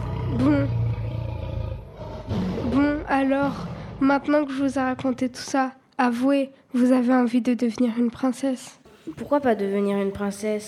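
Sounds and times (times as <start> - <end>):
lion roaring: 0.0 - 4.2
speech: 3.2 - 10.6.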